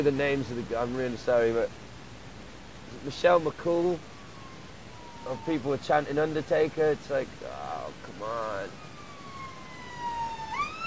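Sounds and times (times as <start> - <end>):
speech: 0.0 - 1.8, 3.0 - 4.1, 5.2 - 7.6, 8.2 - 8.8
ambulance siren wailing as the ambulance goes past: 3.8 - 6.2, 8.2 - 10.8.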